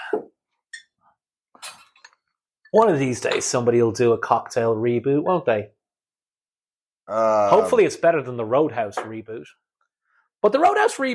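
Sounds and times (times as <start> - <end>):
speech: 0.1 - 0.8, 2.7 - 5.8, 7.1 - 9.6, 10.4 - 11.1
glass clinking during a pour of rye whiskey: 1.6 - 2.2.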